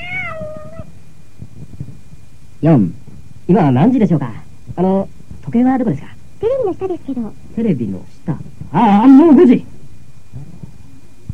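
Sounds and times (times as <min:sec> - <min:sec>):
cat meowing: 0:00.0 - 0:00.9
speech: 0:02.6 - 0:09.7.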